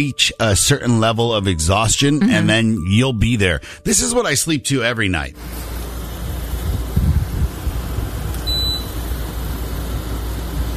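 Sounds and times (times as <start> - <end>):
speech: 0.0 - 5.7
old window air conditioner running with broadband whoosh and deep hum: 5.4 - 10.7.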